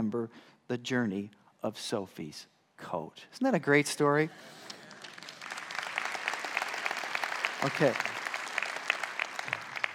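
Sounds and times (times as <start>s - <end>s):
speech: 0.1s - 4.8s, 7.6s - 8.1s
audience applause: 4.7s - 9.9s.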